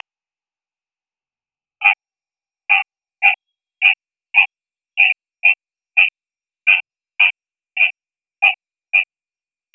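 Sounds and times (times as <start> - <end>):
Mahogany treefrog rattling pulsed calls: 1.8 - 2.0, 2.7 - 9.2.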